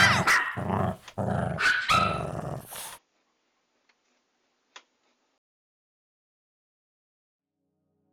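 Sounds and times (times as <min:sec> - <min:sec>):
dog growling and snarling: 0:00.0 - 0:03.0.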